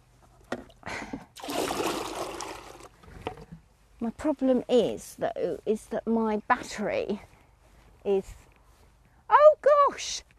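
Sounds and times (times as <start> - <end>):
water poured into a small pet's water bowl: 1.4 - 3.0
speech: 4.0 - 7.3, 8.0 - 8.4, 9.7 - 10.3.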